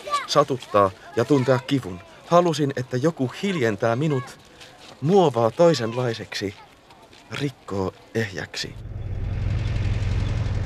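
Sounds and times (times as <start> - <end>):
speech: 0.3 - 4.4, 5.0 - 6.6, 7.3 - 9.0
pickup truck engine rumbling in a street: 8.6 - 10.6.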